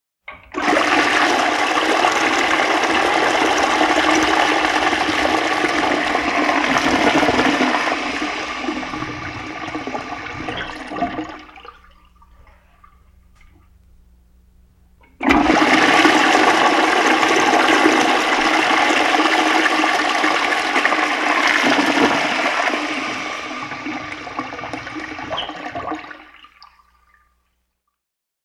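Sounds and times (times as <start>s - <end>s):
household toilet flushing: 0.3s - 13.2s, 15.0s - 27.4s.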